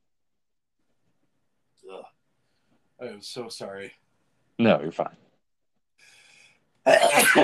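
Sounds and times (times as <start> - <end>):
speech: 1.8 - 2.2, 3.0 - 4.0, 4.6 - 5.2
person sneezing: 6.9 - 7.4.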